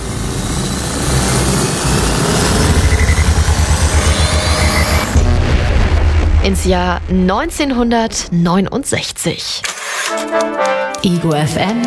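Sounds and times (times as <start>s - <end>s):
thin high whine: 0.0s - 6.6s
time machine powering up with engine-like rumble: 0.0s - 8.4s
fast even pulsing like beating rotors: 0.0s - 9.5s
speech: 6.5s - 9.7s, 10.3s - 11.8s.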